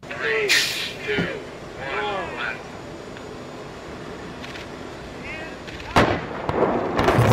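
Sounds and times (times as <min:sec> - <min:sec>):
voices talking and calling out: 0:00.0 - 0:06.1
outdoor noise: 0:00.0 - 0:07.3
booming blasts: 0:06.0 - 0:07.3.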